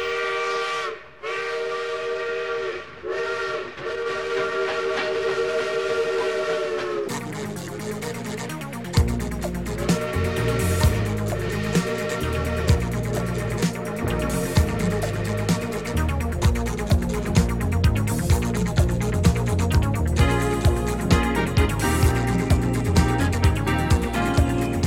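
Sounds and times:
steam-like whistle in a railway station hall: 0.0s - 8.0s, 9.6s - 16.0s, 20.2s - 24.8s
clattering rhythmic mechanical noise and hiss in a railway station hall: 7.0s - 24.8s.

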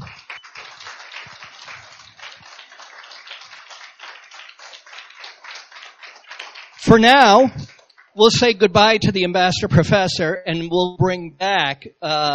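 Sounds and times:
crowd applauding: 0.0s - 8.5s
speech: 6.8s - 12.3s.

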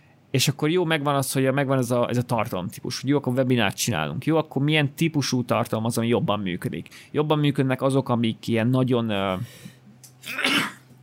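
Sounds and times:
speech: 0.3s - 10.7s
person sneezing: 10.2s - 10.9s.

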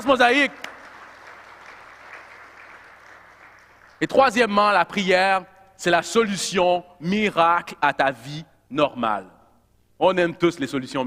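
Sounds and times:
speech: 0.0s - 0.7s, 4.0s - 9.4s, 10.0s - 11.0s
audience applause at a church service: 0.4s - 4.0s.

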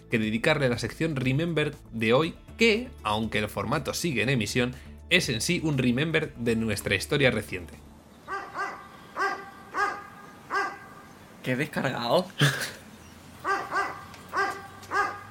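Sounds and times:
speech: 0.1s - 7.8s, 11.4s - 12.8s
dog barking: 8.3s - 11.1s, 13.4s - 15.2s.

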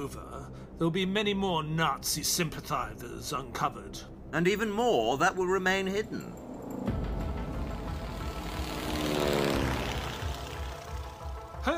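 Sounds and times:
speech: 0.0s - 6.8s
propeller plane engine droning while landing in a crop field outside Bariloche: 5.4s - 11.6s.

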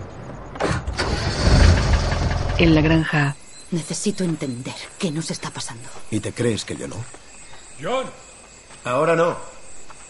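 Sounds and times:
car with a covered rear box engine starting as it sets off: 0.6s - 3.0s
speech: 2.6s - 7.2s, 7.8s - 9.5s.

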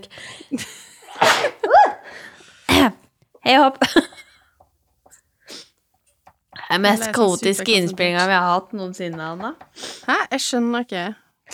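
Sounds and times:
speech: 0.0s - 0.8s, 2.8s - 4.1s, 6.7s - 11.5s
laughter: 0.0s - 2.4s, 3.8s - 4.4s
soft breaths: 0.0s - 2.7s, 4.3s - 5.8s, 9.6s - 10.3s
person sneezing: 1.1s - 3.0s.

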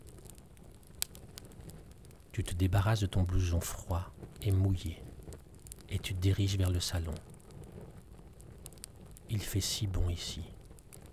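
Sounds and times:
fireplace fire in a house crackling: 0.0s - 11.1s
speech: 2.4s - 5.1s, 5.9s - 7.3s, 9.3s - 10.6s.

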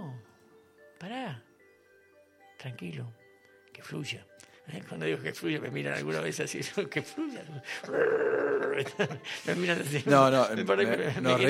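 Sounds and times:
speech: 1.0s - 1.5s, 2.6s - 3.2s, 3.8s - 11.4s
laughter: 6.9s - 11.4s
dog growling: 7.8s - 9.0s.

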